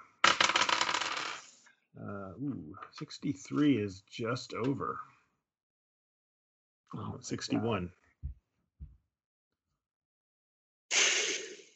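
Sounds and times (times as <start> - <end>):
dice rattling and tumbling for a medical check roll during a game: 0.2 - 1.6
speech: 2.0 - 5.1, 6.9 - 8.4.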